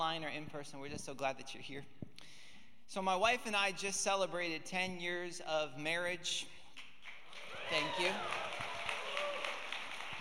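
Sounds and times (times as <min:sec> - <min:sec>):
speech: 0:00.0 - 0:06.6, 0:07.3 - 0:08.4
church audience applauding: 0:07.0 - 0:10.1.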